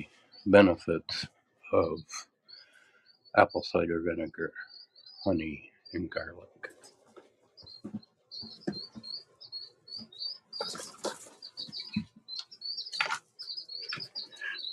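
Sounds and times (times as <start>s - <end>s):
chicks chirping under a heat lamp: 0.0s - 14.7s
speech: 0.4s - 2.3s, 3.4s - 6.8s, 7.8s - 8.6s
rustling and scratching thumps: 6.7s - 9.2s, 10.0s - 12.2s.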